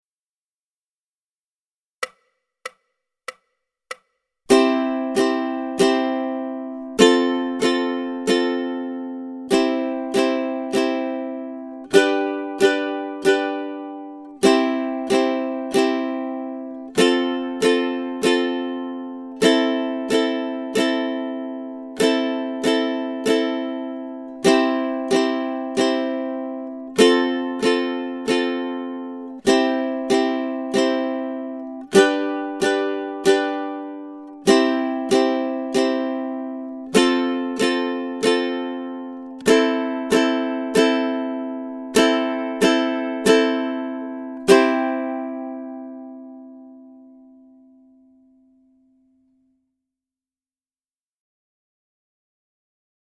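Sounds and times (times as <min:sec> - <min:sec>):
ukulele playing a rhythm study: 0:02.0 - 0:49.0.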